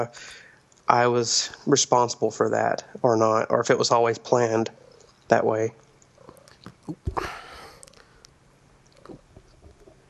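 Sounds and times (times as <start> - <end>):
speech: 0.0 - 5.8
faint cat purring: 3.0 - 8.2, 8.9 - 10.0.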